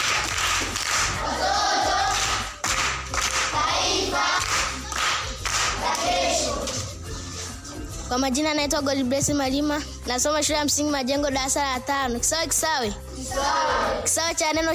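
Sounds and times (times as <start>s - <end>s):
group of children clapping at a primary school quiz: 0.0s - 6.9s
speech: 8.2s - 14.7s.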